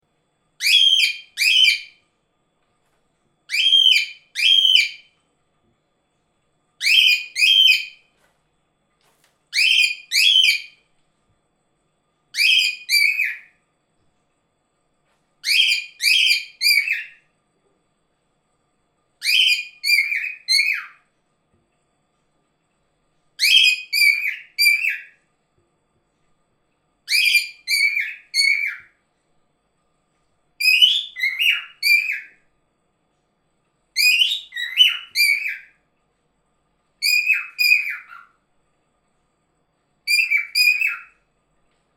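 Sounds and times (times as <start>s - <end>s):
cockatiel calling: 0.6s - 2.0s, 3.5s - 5.1s, 6.8s - 8.0s, 9.5s - 10.8s, 12.3s - 13.5s, 15.4s - 17.2s, 19.2s - 21.0s, 23.4s - 25.2s, 27.1s - 28.9s, 30.6s - 32.4s, 34.0s - 35.7s, 37.0s - 38.4s, 40.1s - 41.2s.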